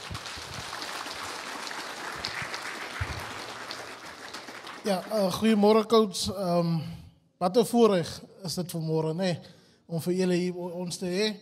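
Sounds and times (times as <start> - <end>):
audience applause: 0.0 - 5.5
speech: 4.8 - 11.4.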